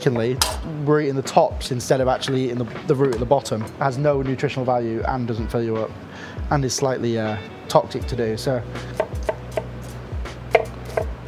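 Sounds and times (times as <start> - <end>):
speech: 0.0 - 9.1
knife dicing onions on a chopping board for a stock base: 10.5 - 11.1.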